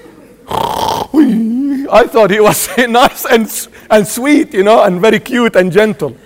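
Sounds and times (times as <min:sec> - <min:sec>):
person imitating snoring with a rasping snort: 0:00.5 - 0:01.5
speech: 0:01.3 - 0:06.2.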